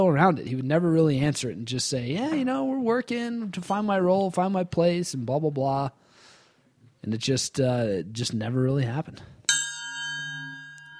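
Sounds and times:
speech: 0.0 - 6.0, 7.0 - 9.4
bell ding: 9.5 - 10.9.

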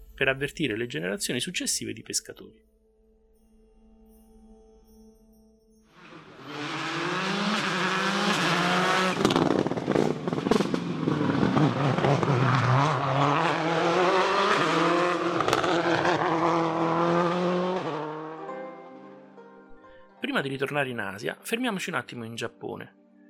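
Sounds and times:
speech: 0.2 - 2.7, 20.4 - 23.0
rally car exhaust popping and crackling: 6.0 - 16.6
Subaru Impreza rally car engine revving: 6.0 - 18.5.

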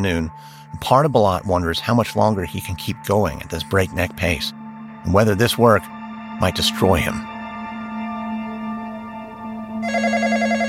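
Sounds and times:
speech: 0.0 - 7.3
steady humming musical drone: 4.4 - 10.6
telephone ringing with a fast warbling trill: 9.8 - 10.6.

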